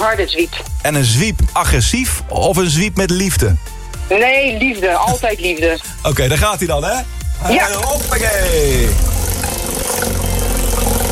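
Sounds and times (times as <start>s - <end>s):
speech: 0.0s - 9.1s
prize wheel spinning and ticking: 7.5s - 11.1s.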